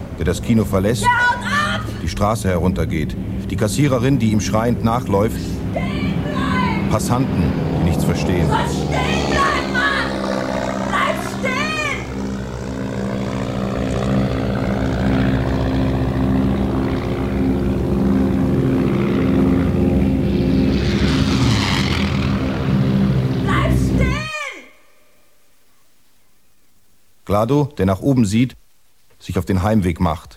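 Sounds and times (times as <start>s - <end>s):
deafening aircraft engine roar: 0.0s - 24.5s
speech: 0.2s - 5.9s, 6.9s - 9.2s, 27.3s - 28.6s, 29.2s - 30.3s.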